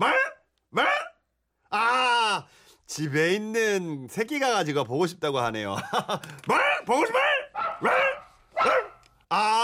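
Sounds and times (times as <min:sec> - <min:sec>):
dog barking: 0:00.0 - 0:01.2, 0:06.5 - 0:09.1
speech: 0:02.9 - 0:09.5
laughter: 0:05.7 - 0:07.1.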